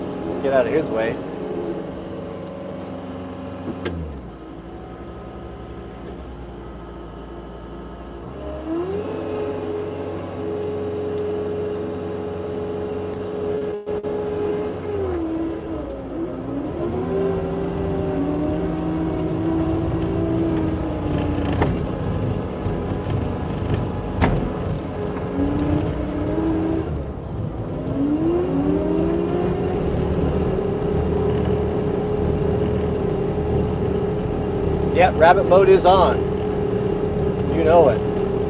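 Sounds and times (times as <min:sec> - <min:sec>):
big snow plow engine droning as it drives past: 0:00.0 - 0:38.4
speech: 0:00.4 - 0:01.3, 0:35.2 - 0:36.2.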